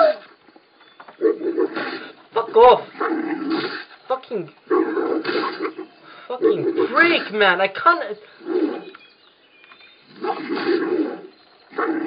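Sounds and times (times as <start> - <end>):
video game wolf growling and snarling when attacked: 1.2 - 4.0, 4.7 - 7.4, 8.4 - 9.0, 10.0 - 12.0
speech: 2.6 - 8.4.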